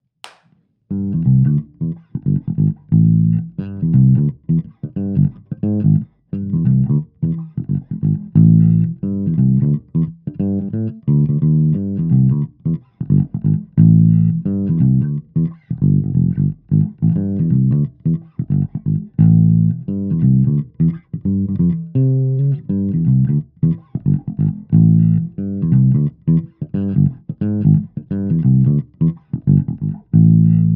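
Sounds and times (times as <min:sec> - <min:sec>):
clean funk music: 0:00.9 - 0:30.7.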